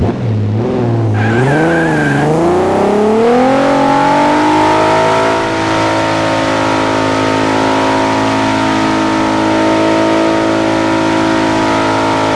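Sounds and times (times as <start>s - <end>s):
vehicle engine revving: 0.0s - 12.3s.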